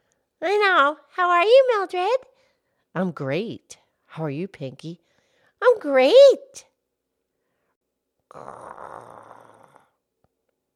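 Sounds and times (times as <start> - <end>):
speech: 0.4 - 2.3, 2.9 - 6.7, 8.3 - 9.5
stomach growling: 8.3 - 10.0.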